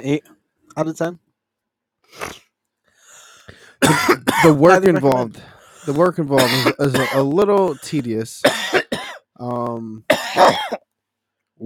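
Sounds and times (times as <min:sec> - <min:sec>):
speech: 0:00.0 - 0:01.2, 0:02.1 - 0:02.4, 0:03.9 - 0:08.8, 0:09.4 - 0:10.9
person coughing hard after smoking: 0:03.8 - 0:04.6, 0:06.4 - 0:09.3, 0:10.1 - 0:10.8.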